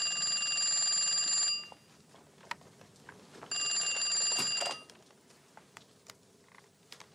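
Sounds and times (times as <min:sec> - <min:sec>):
telephone ringing: 0:00.0 - 0:01.9, 0:03.5 - 0:04.9.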